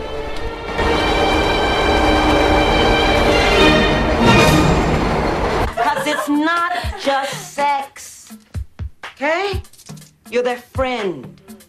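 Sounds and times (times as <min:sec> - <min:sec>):
train passing outside: 0:00.0 - 0:06.3
laughter: 0:05.6 - 0:07.5
speech: 0:10.3 - 0:11.4.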